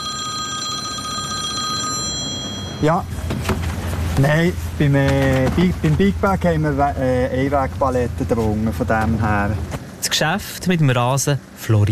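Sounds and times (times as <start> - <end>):
electronic telephone ringing on a turf farm near Wünnewil in Fribourg: 0.0 - 3.1
speech: 2.8 - 3.5, 4.2 - 11.9.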